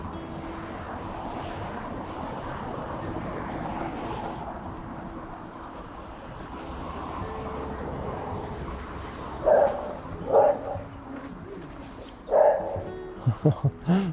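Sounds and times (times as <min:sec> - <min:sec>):
steady outdoor noise: 0:00.0 - 0:14.1
dogs barking: 0:09.3 - 0:12.9
laughter: 0:13.1 - 0:14.1.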